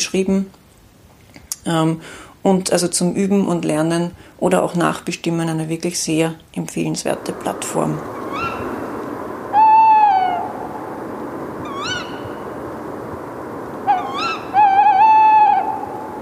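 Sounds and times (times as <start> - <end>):
speech: 0.0 - 0.6, 1.6 - 8.6
hiss: 0.0 - 16.1
owl hooting: 7.1 - 16.1.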